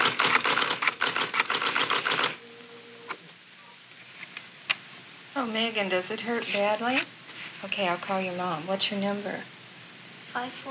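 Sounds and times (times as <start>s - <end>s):
school secretary typing on a typewriter: 0.0s - 2.4s
faint hum: 0.0s - 10.6s
speech: 5.4s - 9.6s, 10.3s - 10.6s.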